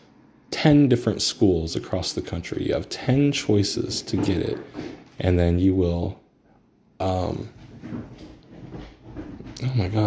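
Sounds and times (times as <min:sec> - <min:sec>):
speech: 0:00.6 - 0:06.2, 0:07.0 - 0:07.6, 0:09.6 - 0:10.0
cats running around on a hardwood floor: 0:07.5 - 0:10.0.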